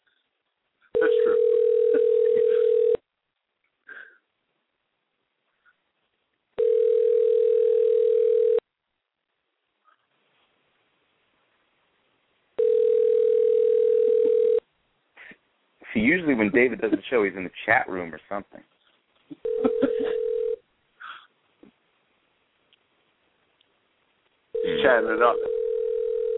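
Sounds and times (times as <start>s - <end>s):
outgoing phone call ringback tone through a phone line: 1.0s - 3.0s, 6.6s - 8.6s, 12.6s - 14.6s, 19.4s - 20.6s, 24.6s - 26.3s
laughter: 16.0s - 17.3s, 19.3s - 20.3s
speech: 16.2s - 18.7s, 25.0s - 25.5s.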